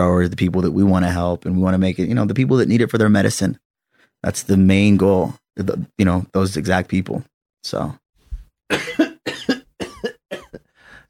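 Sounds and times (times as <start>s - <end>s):
speech: 0.0s - 3.6s, 4.2s - 8.0s, 8.7s - 9.1s
person coughing: 8.7s - 10.7s
breathy exhale: 10.7s - 11.0s.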